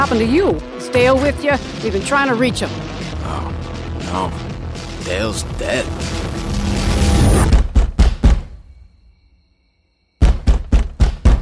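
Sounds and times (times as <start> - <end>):
speech: 0.0 - 6.2
burst of noise: 3.1 - 7.7
loud pounding on a door: 7.5 - 8.5, 10.2 - 11.4.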